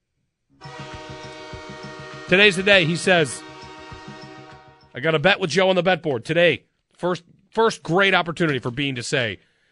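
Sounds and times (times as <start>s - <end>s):
loud train horn: 0.6s - 5.0s
rhythmic chugging beat: 0.6s - 5.1s
speech: 2.3s - 3.5s, 5.0s - 9.5s.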